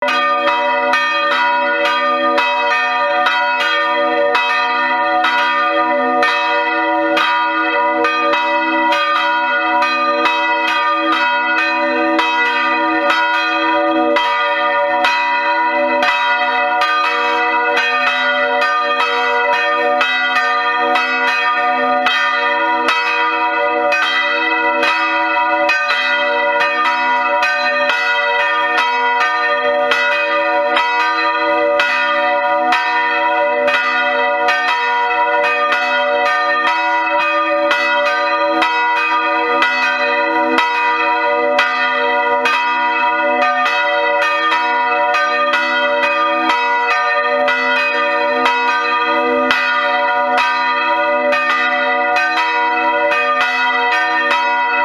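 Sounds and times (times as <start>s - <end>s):
bell: 0.0s - 54.8s.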